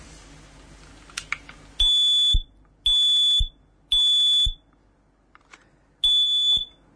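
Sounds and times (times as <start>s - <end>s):
household smoke detector alarm beeping during a test: 1.8s - 4.6s, 6.0s - 6.8s.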